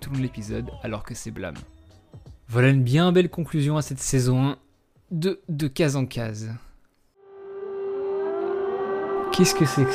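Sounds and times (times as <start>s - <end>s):
speech: 0.1s - 1.8s, 2.5s - 6.7s, 9.4s - 9.9s
civil defense siren wailing: 7.2s - 9.9s.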